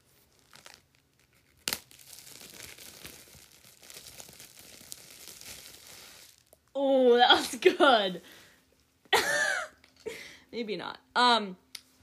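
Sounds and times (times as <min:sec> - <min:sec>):
wrapper being unwrapped, crinkling: 0:00.0 - 0:06.7
speech: 0:06.8 - 0:08.4, 0:10.6 - 0:11.6.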